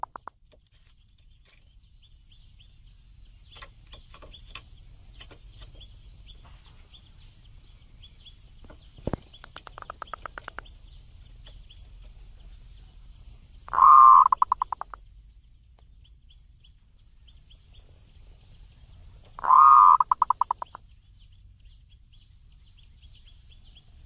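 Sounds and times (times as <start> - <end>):
zebra dove singing warbling coo phrases: 13.7 - 15.0, 19.3 - 20.8.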